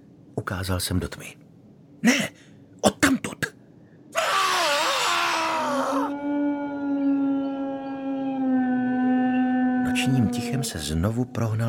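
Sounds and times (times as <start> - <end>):
speech: 0.4 - 1.4, 2.0 - 2.4, 10.6 - 11.6
dog howling at night: 4.2 - 10.7.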